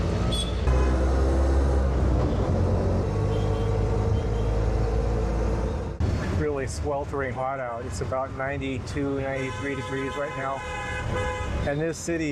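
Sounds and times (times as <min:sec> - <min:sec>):
small motorized rickshaw engine droning through city traffic: 0:00.0 - 0:06.0
road noise: 0:00.0 - 0:12.2
speech: 0:06.6 - 0:12.2.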